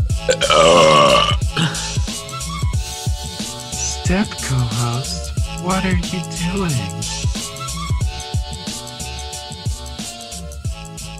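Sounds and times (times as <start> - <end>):
steady thumping rhythmic beat: 0.0 - 3.1, 5.4 - 8.2
speech: 0.2 - 0.9, 4.1 - 7.4
loud drawn-out burp: 0.2 - 1.9.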